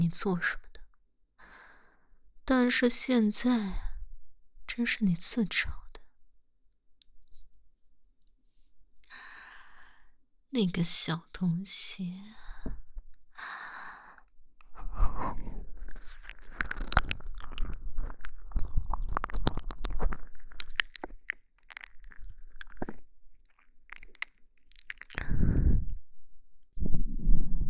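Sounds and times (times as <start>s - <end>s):
speech: 0.0s - 0.6s, 2.5s - 3.8s, 4.7s - 5.8s, 10.5s - 12.8s
creature chewing and swallowing something: 14.6s - 26.1s.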